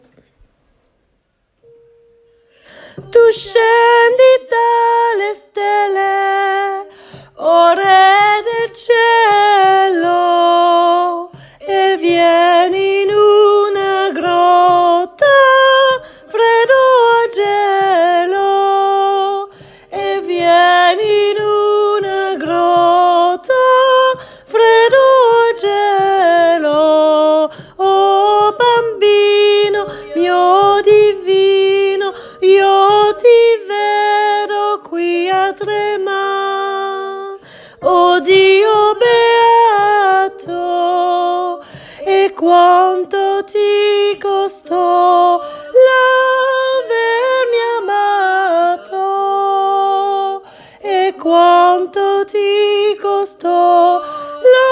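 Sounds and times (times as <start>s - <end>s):
soprano section singing: 2.7s - 54.6s.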